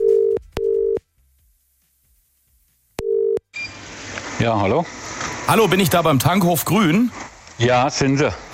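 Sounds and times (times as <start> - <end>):
electronic telephone ringing tone: 0.0 - 1.0, 3.0 - 3.8
speech: 4.4 - 8.4.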